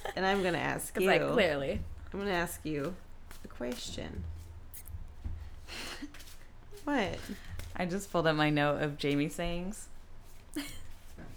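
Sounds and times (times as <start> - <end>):
speech: 0.2 - 4.4, 6.8 - 9.9, 10.6 - 11.3
deck of cards being shuffled: 2.8 - 3.9, 5.8 - 8.0.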